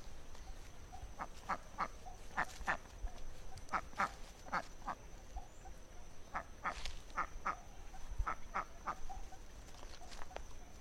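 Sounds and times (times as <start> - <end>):
wild duck giving clipped paired quacks: 1.2 - 2.8, 3.7 - 5.0, 6.3 - 7.6, 8.2 - 9.0.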